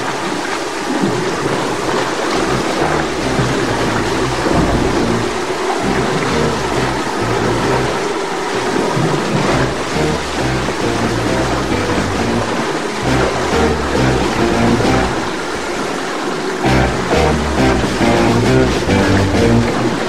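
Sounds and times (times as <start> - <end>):
heavy rain in a violent thunderstorm in Spain: 0.0 - 20.0
deep rolling thunder in a violent thunderstorm in Spain: 4.3 - 6.2.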